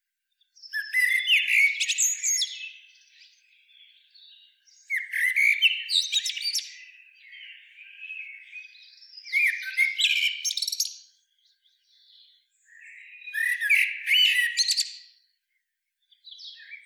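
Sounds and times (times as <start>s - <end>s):
Eurasian blackbird Turdus merula singing: 0.0s - 16.8s.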